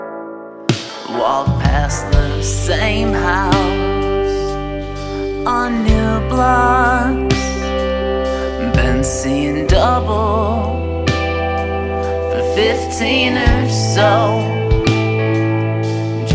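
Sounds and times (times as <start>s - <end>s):
song with layered sustained synth-like tones and processed melodic lines: 0.4s - 16.3s.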